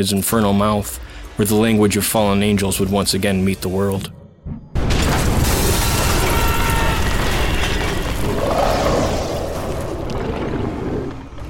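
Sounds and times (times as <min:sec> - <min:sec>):
speech: 0:00.0 - 0:04.2
dense crackling and rumbling debris: 0:04.7 - 0:11.4
loud explosive crash of splintering rotted wood: 0:04.8 - 0:09.7.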